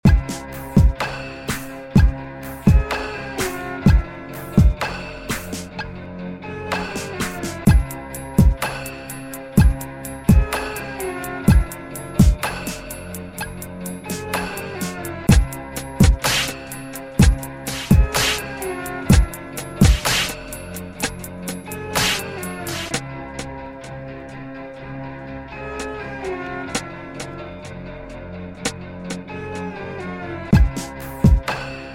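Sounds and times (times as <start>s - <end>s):
violin over a beat: 2.0s - 4.9s, 6.8s - 8.6s, 9.6s - 13.5s, 14.1s - 23.0s, 30.5s - 31.9s.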